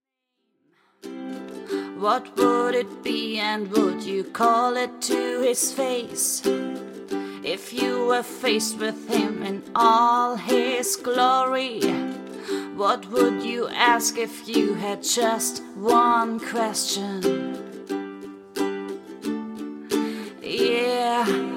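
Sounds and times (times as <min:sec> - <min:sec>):
ukulele: 0:01.0 - 0:21.5
person singing: 0:01.1 - 0:21.5.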